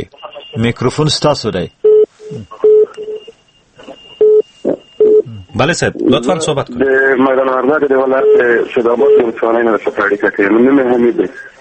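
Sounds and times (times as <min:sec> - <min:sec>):
speech: 0:00.0 - 0:02.5, 0:05.6 - 0:11.5
telephone line beeps as a call connects to a radio call-in show: 0:01.8 - 0:05.3, 0:08.1 - 0:09.5
telephone line noise: 0:02.2 - 0:11.6.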